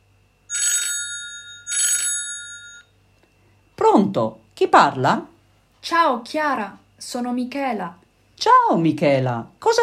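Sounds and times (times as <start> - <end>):
telephone ringing: 0.5 - 2.9
speech: 3.9 - 9.8.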